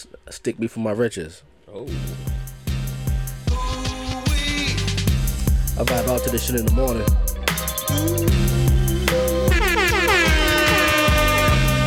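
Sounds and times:
speech: 0:00.0 - 0:02.3, 0:05.8 - 0:07.3, 0:07.9 - 0:09.3
thumping music beat: 0:01.9 - 0:11.8
air horn sound effect blaring: 0:09.3 - 0:11.8.

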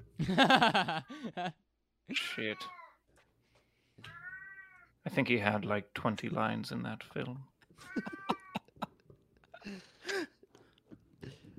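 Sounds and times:
laughter: 0:00.2 - 0:01.6, 0:07.9 - 0:09.7
speech: 0:00.2 - 0:02.8, 0:05.0 - 0:08.4
cat meowing: 0:02.2 - 0:03.0, 0:04.0 - 0:05.0, 0:07.8 - 0:08.7.

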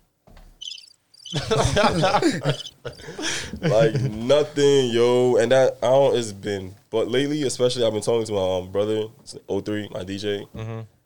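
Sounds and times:
crickets chirping sound effect: 0:00.6 - 0:03.8
laughter: 0:01.3 - 0:04.6
speech: 0:01.3 - 0:11.0.

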